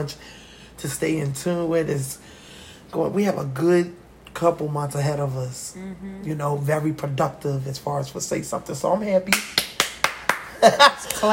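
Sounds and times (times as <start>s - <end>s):
speech: 0.0s - 9.8s, 10.6s - 11.3s
person vocalizing: 5.7s - 6.5s
crisp hand claps: 9.3s - 11.3s.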